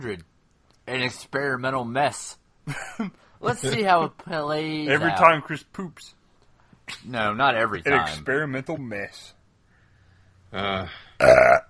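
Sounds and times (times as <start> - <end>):
speech: 0.0 - 6.2, 6.9 - 9.4, 10.5 - 11.6
loud burps after drinking bourbon: 10.5 - 11.6.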